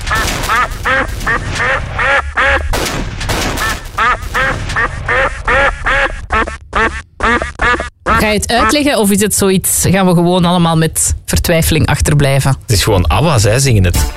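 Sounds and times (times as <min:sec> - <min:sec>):
duck quacking: 0:00.0 - 0:02.8, 0:03.6 - 0:08.8
speech: 0:08.2 - 0:14.1.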